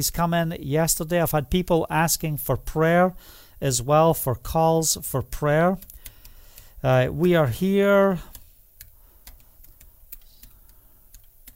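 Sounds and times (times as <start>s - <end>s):
speech: 0.0s - 5.9s, 6.8s - 8.3s
typing on a computer keyboard: 5.8s - 6.7s, 8.3s - 11.5s.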